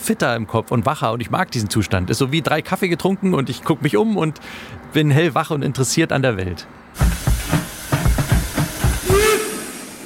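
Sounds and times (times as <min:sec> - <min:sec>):
speech: 0:00.0 - 0:07.6
steam locomotive chuffing in rhythmic bursts of hiss: 0:07.0 - 0:10.0
whistle-like tone: 0:09.0 - 0:10.0.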